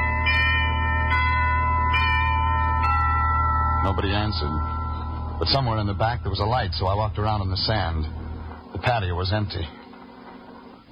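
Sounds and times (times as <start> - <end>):
house doorbell ringing in fog in Santa Monica: 0.0 - 8.5
low hum: 0.0 - 10.9
speech: 3.8 - 4.8, 5.4 - 8.2, 8.8 - 9.8.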